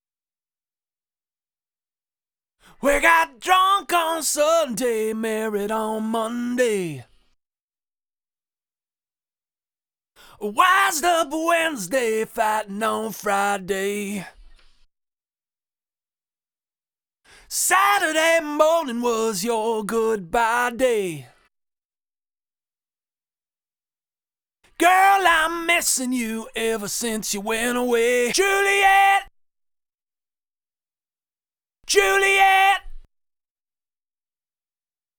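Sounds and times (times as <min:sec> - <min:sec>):
lead vocals: 0:02.8 - 0:07.0, 0:10.4 - 0:14.4, 0:17.5 - 0:21.3, 0:24.8 - 0:29.3, 0:31.9 - 0:32.9.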